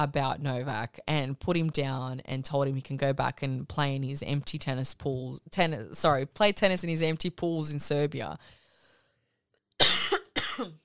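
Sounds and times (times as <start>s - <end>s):
speech: 0.0s - 8.6s, 10.6s - 10.8s
person coughing harshly: 9.8s - 10.8s.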